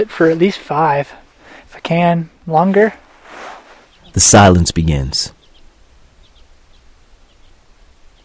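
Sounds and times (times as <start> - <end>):
speech: 0.0 - 3.5, 4.2 - 5.4
steady quiet outdoor hiss: 0.0 - 8.2
faint bird chirps from the brush: 3.8 - 8.2.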